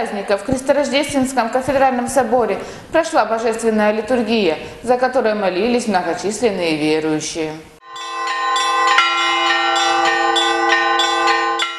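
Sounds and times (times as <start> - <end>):
speech: 0.0 - 7.7
church bells ringing a peal for the feast of the Annunciation: 7.8 - 11.7.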